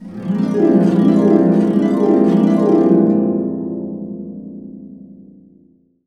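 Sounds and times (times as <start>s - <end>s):
harp glissando up and down: 0.0s - 3.6s.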